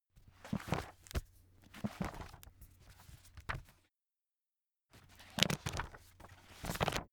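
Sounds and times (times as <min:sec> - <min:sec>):
book browsing: 0:00.5 - 0:03.7, 0:05.0 - 0:07.0.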